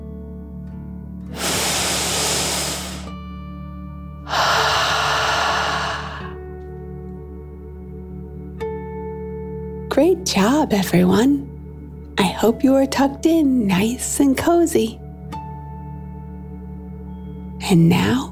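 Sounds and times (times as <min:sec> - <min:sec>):
slow deep breath in and out during a relaxation exercise: 0:01.3 - 0:03.1, 0:04.3 - 0:06.5
speech: 0:10.0 - 0:11.5, 0:12.4 - 0:15.0, 0:17.7 - 0:18.3.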